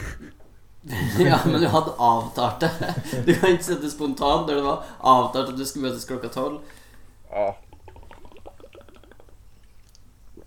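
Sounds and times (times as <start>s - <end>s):
laughter: 0.9s - 3.7s
speech: 0.9s - 7.6s
breathing: 4.8s - 5.0s, 6.6s - 7.2s
person gulping and swallowing water: 7.3s - 10.4s.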